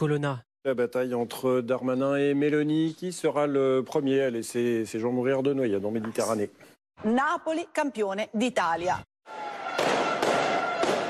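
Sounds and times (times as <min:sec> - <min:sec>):
speech: 0:00.0 - 0:09.6
fireworks and firecrackers exploding: 0:09.8 - 0:11.0.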